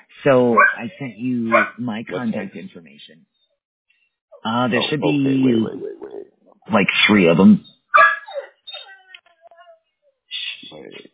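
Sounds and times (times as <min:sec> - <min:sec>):
speech: 0:00.2 - 0:03.4, 0:04.4 - 0:07.7
dog barking: 0:00.6 - 0:00.8, 0:01.5 - 0:01.8, 0:08.0 - 0:09.0.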